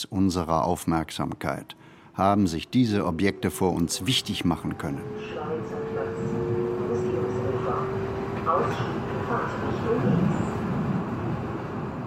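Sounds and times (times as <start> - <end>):
subway train rolling with a low rumble: 0.0 - 12.0
speech: 0.1 - 5.9, 8.5 - 10.4
indistinct voices murmuring: 2.2 - 10.5.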